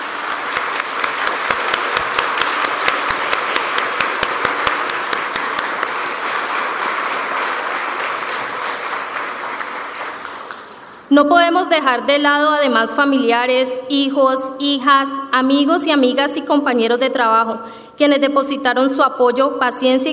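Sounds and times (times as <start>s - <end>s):
audience applauding: 0.0s - 11.0s
speech: 11.2s - 20.1s.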